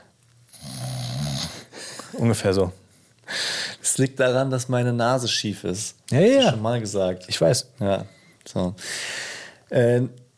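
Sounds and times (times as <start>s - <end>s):
person imitating loud snore-like breathing: 0.5s - 2.1s
speech: 2.1s - 2.8s, 4.0s - 10.3s.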